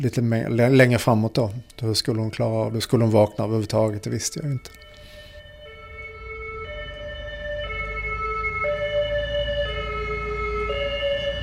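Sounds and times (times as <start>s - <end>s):
speech: 0.0s - 4.8s
ambulance siren in a two-tone pattern: 2.6s - 11.4s
low rumble of road traffic: 4.8s - 11.4s.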